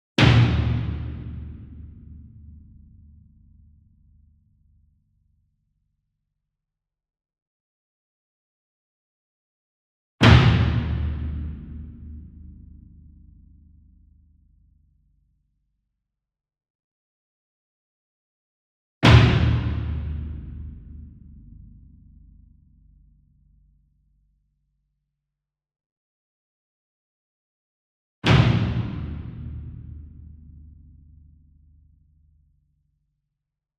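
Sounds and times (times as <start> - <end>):
40 inch concert bass drum flam with hard beater: 0.2 - 2.1, 10.2 - 12.4, 19.0 - 21.1, 28.2 - 30.4.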